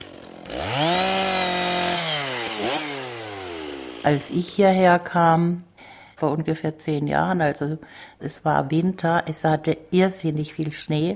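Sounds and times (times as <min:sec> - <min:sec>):
chainsaw cutting wood in the forest: 0:00.0 - 0:04.5
speech: 0:04.1 - 0:11.1.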